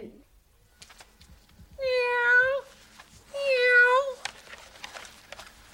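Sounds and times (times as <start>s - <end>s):
cat meowing: 1.8s - 2.7s, 3.3s - 4.2s.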